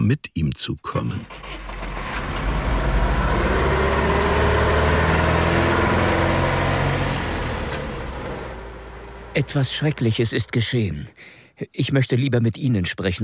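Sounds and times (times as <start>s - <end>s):
speech: 0.0s - 1.8s, 9.4s - 13.2s
car engine as a car pulls up and stops: 1.3s - 10.4s.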